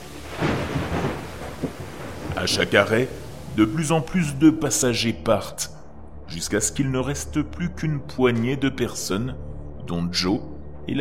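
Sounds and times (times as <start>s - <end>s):
deep rolling thunder: 0.0s - 4.1s
steady rain: 0.0s - 4.9s
speech: 2.4s - 11.0s.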